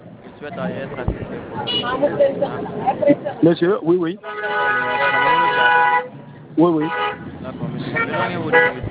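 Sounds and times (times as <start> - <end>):
speech: 0.4 - 8.8
brief car horn toots: 4.2 - 6.1, 6.8 - 7.2, 7.9 - 8.8.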